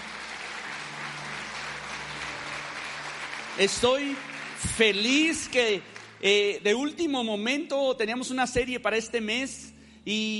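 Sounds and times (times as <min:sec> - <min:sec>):
audience applauding: 0:00.0 - 0:06.5
speech: 0:03.6 - 0:10.3.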